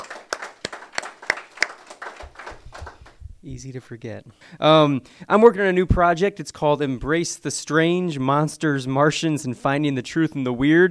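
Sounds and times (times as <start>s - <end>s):
small group audience applause: 0.0s - 3.2s
speech: 3.4s - 10.8s.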